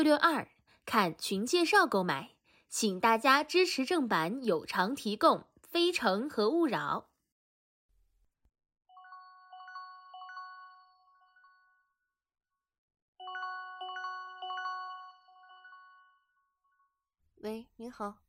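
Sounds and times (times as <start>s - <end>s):
speech: 0.0s - 7.1s, 17.4s - 18.2s
phone ringing with bright electronic melody for incoming call: 8.9s - 12.0s, 13.2s - 16.5s.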